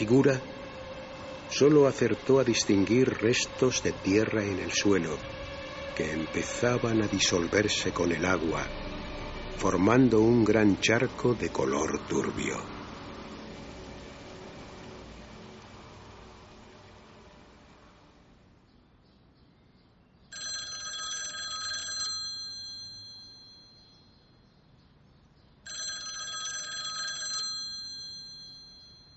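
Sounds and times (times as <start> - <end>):
speech: 0.0 - 0.5, 1.5 - 5.4, 6.0 - 8.8, 9.6 - 12.7
telephone ringing with electronic trills: 20.3 - 24.2, 25.7 - 29.1.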